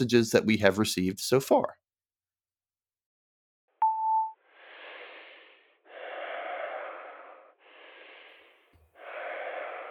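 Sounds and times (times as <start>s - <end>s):
speech: 0.0s - 1.8s
voicemail beep: 3.8s - 4.4s.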